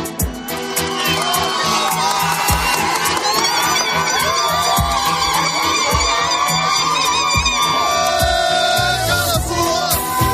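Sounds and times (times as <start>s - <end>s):
crowd cheering and shouting at border reopening: 0.1s - 10.3s
high-pitched whoops: 0.2s - 10.3s
whistles: 0.3s - 10.3s
applause: 0.5s - 8.8s.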